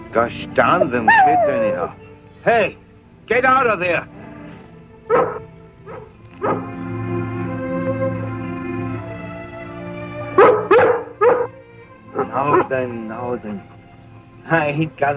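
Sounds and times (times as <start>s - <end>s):
steady humming music-like background: 0.0s - 15.1s
speech: 0.1s - 4.2s, 5.1s - 5.4s, 12.4s - 13.8s, 14.4s - 15.1s
dog barking in sharp yaps: 0.8s - 1.9s, 5.1s - 6.7s, 10.4s - 11.6s, 12.2s - 12.8s.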